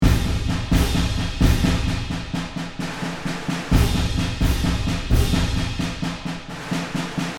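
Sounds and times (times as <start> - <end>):
field drum marching beat: 0.0 - 7.3.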